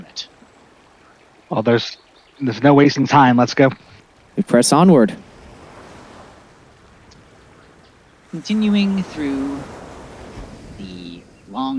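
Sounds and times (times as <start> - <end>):
waves lapping on a fjord shore: 0.0 - 11.7
speech: 0.1 - 0.4, 1.5 - 5.3, 8.3 - 9.8, 10.8 - 11.7
light breeze brushing the microphone: 5.2 - 11.7.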